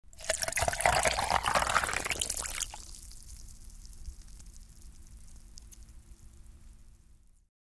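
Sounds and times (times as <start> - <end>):
water in a glass with ice: 0.1 - 3.5.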